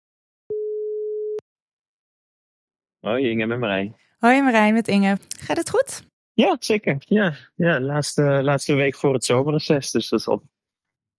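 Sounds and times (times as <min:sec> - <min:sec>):
telephone call tone beep: 0:00.5 - 0:01.4
speech: 0:03.0 - 0:10.5.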